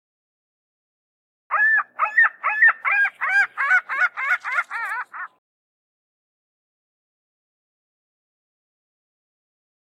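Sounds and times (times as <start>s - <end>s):
gull calling: 1.5s - 5.4s.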